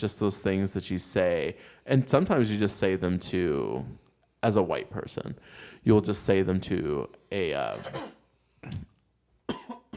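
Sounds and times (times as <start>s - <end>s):
speech: 0.0s - 8.9s
dry coughs: 7.7s - 8.9s, 9.5s - 9.9s.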